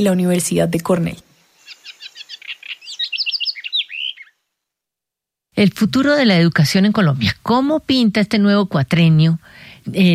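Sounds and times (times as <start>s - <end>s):
speech: 0.0s - 1.3s, 5.6s - 10.1s
house wren singing in Colombia: 0.0s - 4.5s.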